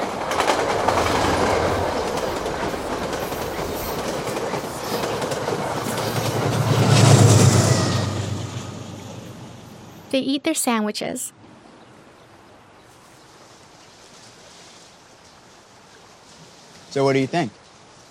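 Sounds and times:
train whizzing past an outdoor platform by a lake: 0:00.0 - 0:10.2
speech: 0:10.2 - 0:11.4, 0:16.9 - 0:17.6.

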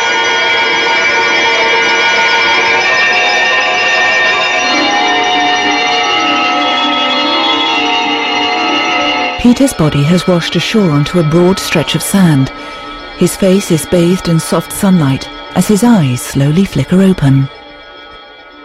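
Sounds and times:
bells ringing in a dense peal: 0:00.0 - 0:18.6
speech: 0:09.4 - 0:17.6.

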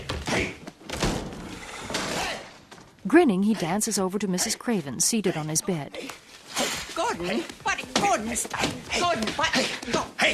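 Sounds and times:
bedroom door kicked open with a backward kick: 0:00.0 - 0:02.4
speech: 0:03.1 - 0:06.3, 0:07.1 - 0:10.3.

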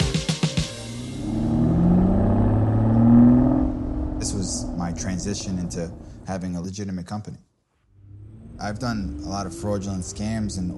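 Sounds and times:
sports car engine revving: 0:01.0 - 0:06.3, 0:08.0 - 0:10.7
speech: 0:04.2 - 0:07.5, 0:08.6 - 0:10.7.

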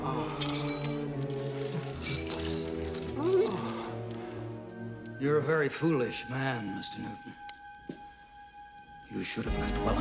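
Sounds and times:
skylight glass crashing and shattering as someone crashes through it: 0:00.1 - 0:04.1
speech: 0:05.2 - 0:07.4, 0:09.1 - 0:09.9.

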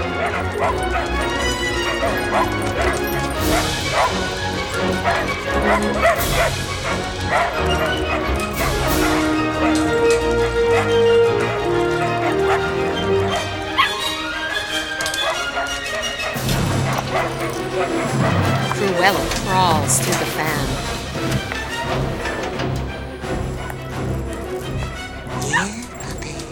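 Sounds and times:
dense continuous music: 0:00.0 - 0:26.5
dogs and puppies barking, yipping and whimpering: 0:00.0 - 0:26.5
speech: 0:19.0 - 0:20.8.

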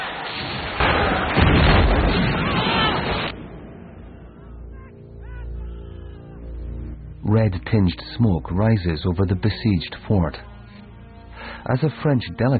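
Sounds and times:
heavy guns firing on a besieged fort's stockade and parade ground: 0:00.0 - 0:04.8
speech: 0:07.3 - 0:10.5, 0:11.6 - 0:12.5.

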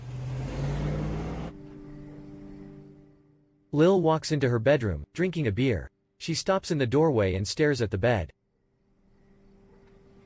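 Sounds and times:
car engine rumble driving off down a neighborhood street: 0:00.0 - 0:03.1
speech: 0:03.7 - 0:08.4.

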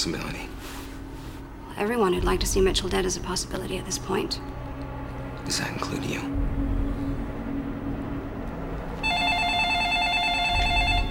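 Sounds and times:
speech: 0:00.0 - 0:00.5, 0:01.8 - 0:04.5, 0:05.5 - 0:06.6
steady low rumble: 0:00.9 - 0:09.4
electronic telephone ring with a warbling trill: 0:09.0 - 0:11.1.

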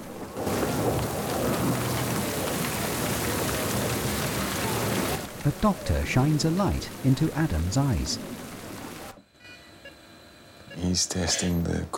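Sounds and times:
heavy rain downpour with low rumble: 0:00.0 - 0:09.2
speech: 0:05.4 - 0:08.4, 0:10.9 - 0:11.9.

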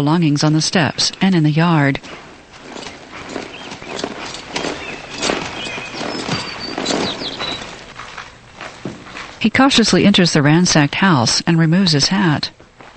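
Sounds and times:
speech: 0:00.0 - 0:02.2, 0:09.4 - 0:12.6
horse hooves clip-clopping as a rider stops: 0:00.2 - 0:10.2.

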